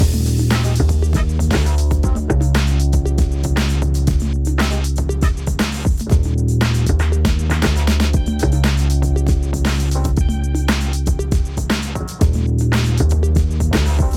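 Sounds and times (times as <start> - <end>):
90s hip hop game music: 0.0 - 14.1.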